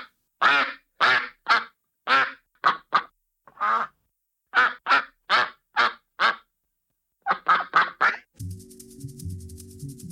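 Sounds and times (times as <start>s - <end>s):
ducks quacking: 0.0s - 6.5s, 7.2s - 8.3s.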